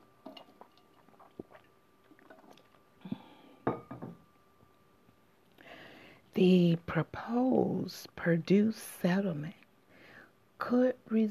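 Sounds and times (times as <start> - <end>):
sipping water and swallowing: 0.4 - 2.8
drinking glass clinking: 3.6 - 4.2
speech: 6.4 - 9.6, 10.6 - 11.2.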